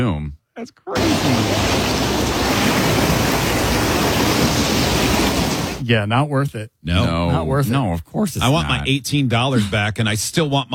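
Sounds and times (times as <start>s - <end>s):
speech: 0.0s - 2.4s, 5.9s - 10.7s
rushing floodwater from an overflowing river: 1.0s - 5.8s.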